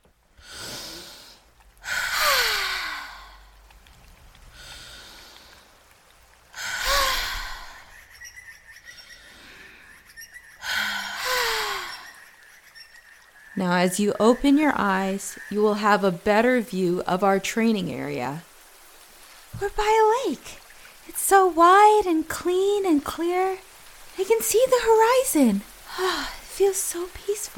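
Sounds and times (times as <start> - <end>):
deep breaths, inhale and exhale: 0.4 - 3.6, 4.3 - 8.0, 8.9 - 10.0, 10.6 - 12.2
speech: 13.6 - 18.5, 19.6 - 20.6, 21.3 - 27.5.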